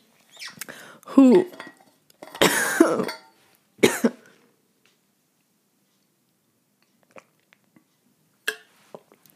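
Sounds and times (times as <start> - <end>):
speech: 1.2 - 1.6
coughing from a scratchy throat: 2.3 - 4.3.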